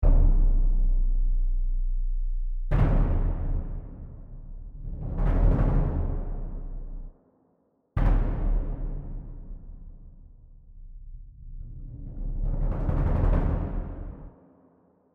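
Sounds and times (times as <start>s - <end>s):
bass drum: 0.0s - 7.1s, 8.0s - 14.3s.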